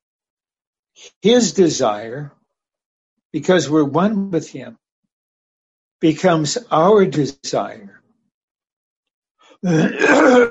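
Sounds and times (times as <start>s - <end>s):
speech: 1.0s - 2.4s, 3.3s - 4.8s, 6.0s - 8.0s, 9.6s - 10.4s
throat clearing to clear phlegm: 9.6s - 10.4s.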